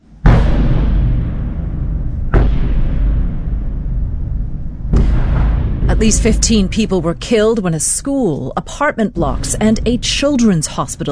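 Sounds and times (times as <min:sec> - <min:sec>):
bombardment explosions overnight in Kyiv: 0:00.0 - 0:07.8
speech: 0:06.0 - 0:11.1.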